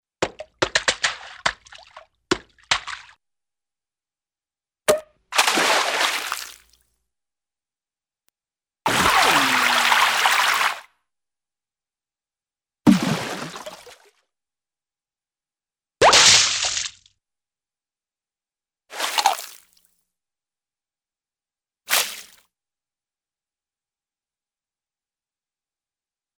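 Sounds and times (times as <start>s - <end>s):
tap dance: 0.2s - 3.0s
cartoon water splashes: 4.9s - 6.6s, 8.9s - 10.9s, 12.9s - 14.0s, 16.0s - 16.9s, 18.9s - 19.6s, 21.9s - 22.4s.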